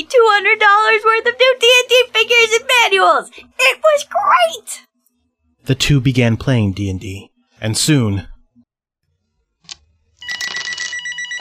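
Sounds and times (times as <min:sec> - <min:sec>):
speech: 0:00.0 - 0:04.9, 0:05.6 - 0:08.3
telephone with a metallic bell ringing: 0:10.2 - 0:11.4.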